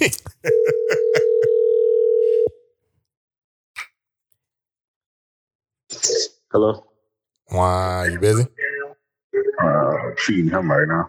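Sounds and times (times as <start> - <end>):
laughter: 0.0 - 1.6
steady electronic phone tone as a call is placed: 0.5 - 2.5
speech: 6.5 - 6.9, 7.5 - 8.7, 9.6 - 11.0.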